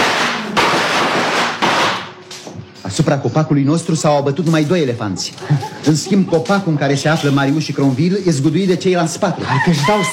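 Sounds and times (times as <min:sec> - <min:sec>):
gunshots fired at elephants: 0:00.0 - 0:02.2
speech: 0:02.9 - 0:10.1
laughter: 0:03.8 - 0:08.0, 0:08.8 - 0:10.1.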